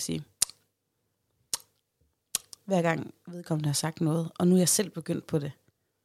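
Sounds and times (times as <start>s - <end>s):
speech: 0.0s - 0.3s, 2.7s - 5.6s
wet mouth clicks or lip smacks from a smacking tic: 0.4s - 0.6s, 1.5s - 2.7s.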